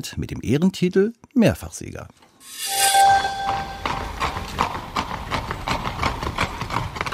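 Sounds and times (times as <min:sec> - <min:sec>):
speech: 0:00.0 - 0:02.8
high-pitched whinny-like tone: 0:02.4 - 0:04.5
hooves of two ridden horses clip-clopping: 0:03.9 - 0:07.1.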